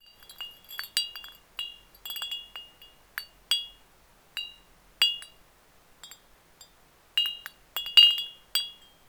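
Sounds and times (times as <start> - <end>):
ceramic chimes: 0.0 - 5.4, 6.0 - 9.0.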